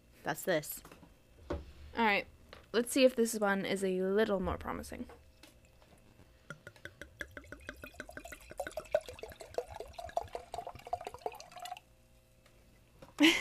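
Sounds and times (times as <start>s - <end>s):
speech: 0.2s - 1.0s, 2.0s - 5.2s
Cabernet Sauvignon wine glugging into a glass: 5.2s - 11.8s.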